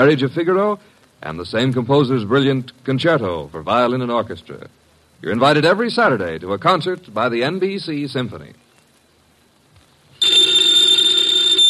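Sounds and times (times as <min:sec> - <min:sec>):
speech: 0:00.0 - 0:08.6
telephone bell ringing: 0:10.2 - 0:11.6.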